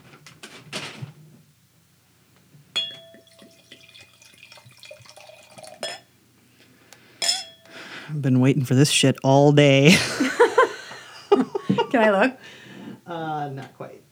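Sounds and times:
light glassy clink and ring: 2.7s - 6.1s, 7.2s - 7.7s
red wine pouring into a glass: 3.0s - 6.1s
speech: 8.1s - 10.3s, 11.9s - 14.0s
laughter: 9.7s - 12.9s.

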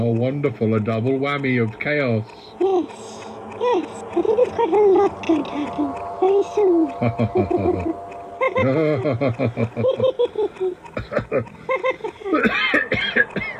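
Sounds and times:
speech: 0.0s - 13.4s
person laughing: 4.1s - 5.9s, 7.0s - 13.3s
person coughing: 12.4s - 13.5s.

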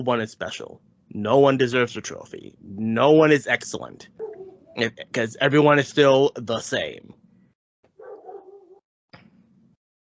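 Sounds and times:
speech: 0.0s - 4.2s, 4.8s - 7.2s
dog barking loud and rough: 4.2s - 4.8s, 8.0s - 8.8s.

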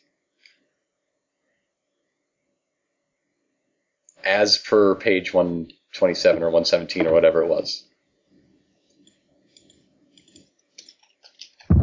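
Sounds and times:
speech: 4.2s - 7.9s
people typing on keyboards: 9.0s - 11.7s.

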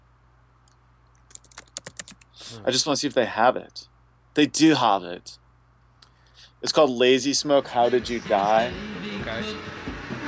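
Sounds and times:
faint low hum: 0.0s - 10.2s
typing on a computer keyboard: 1.3s - 2.3s
speech: 2.5s - 5.4s, 6.6s - 9.7s.

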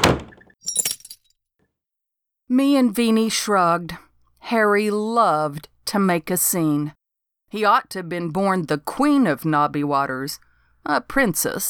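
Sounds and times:
heavy door slamming shut: 0.0s - 0.5s
plate glass windows rattling in their frames: 0.0s - 0.5s
speech: 2.5s - 11.6s.

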